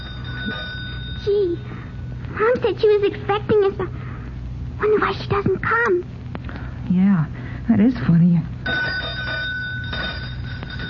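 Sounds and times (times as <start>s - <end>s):
pull doorbell ringing: 0.0s - 1.3s, 8.6s - 10.8s
low rumble: 0.0s - 10.8s
speech: 1.2s - 1.8s, 2.4s - 4.0s, 4.8s - 6.2s, 6.9s - 9.2s.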